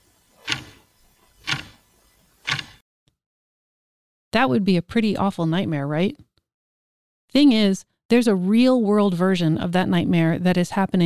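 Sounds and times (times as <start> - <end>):
big wall clock ticking: 0.4 - 0.8, 1.4 - 2.8
speech: 4.4 - 6.3, 7.3 - 11.0.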